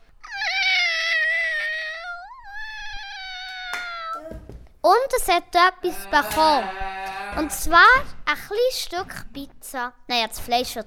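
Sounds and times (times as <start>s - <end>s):
kitten meowing for food: 0.2s - 4.2s
speech: 4.9s - 10.8s.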